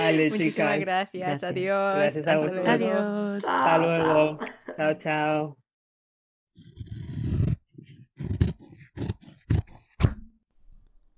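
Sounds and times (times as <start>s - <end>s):
speech: 0.0s - 5.6s
sharp scissors snipping: 6.6s - 11.0s.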